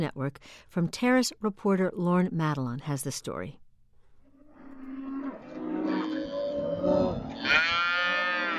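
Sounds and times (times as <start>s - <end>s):
speech: 0.0s - 3.6s
cattle bellowing and mooing while being separated: 4.3s - 8.5s.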